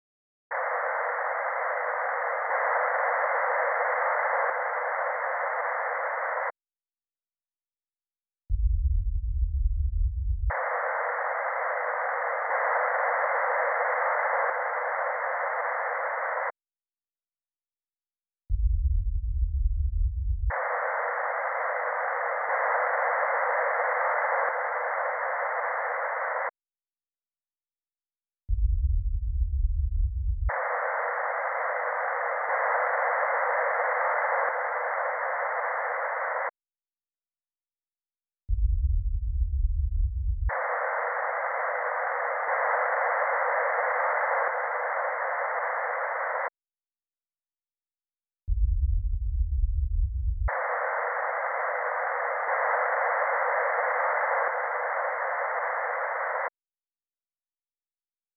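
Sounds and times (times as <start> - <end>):
surround sound speaker balance test with subwoofer: 0.5 - 6.6, 8.5 - 16.6, 18.6 - 26.6, 28.5 - 36.6, 38.5 - 46.6, 48.5 - 56.6.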